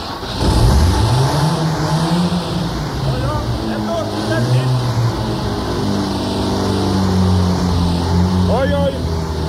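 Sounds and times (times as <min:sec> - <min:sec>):
car engine started with key, cranking, revving and idling: 0:00.0 - 0:09.4.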